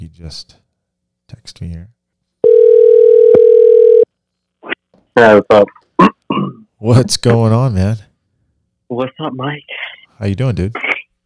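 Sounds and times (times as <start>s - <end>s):
speech: 0.1s - 0.6s, 1.3s - 4.0s, 5.2s - 8.1s, 8.9s - 10.9s
telephone dial tone while placing a call: 2.4s - 4.0s.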